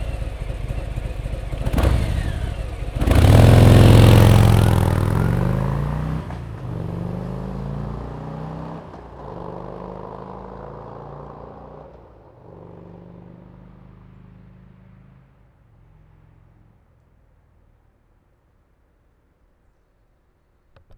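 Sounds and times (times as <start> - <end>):
Fat Bob 107 motorcycle taking off: 0.0 - 11.9.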